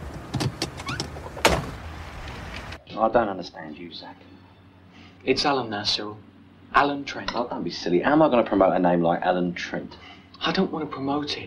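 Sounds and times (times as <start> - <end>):
door shutting with a thump: 0.4 - 1.8
speech: 3.0 - 4.4, 5.2 - 11.4.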